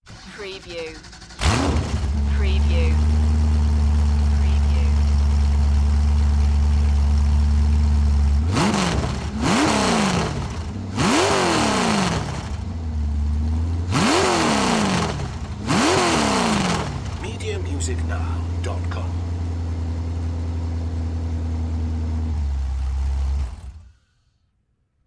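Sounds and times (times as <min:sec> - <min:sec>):
Chevy V8 hot rod engine starting, revving and shutting off: 0:00.0 - 0:24.0.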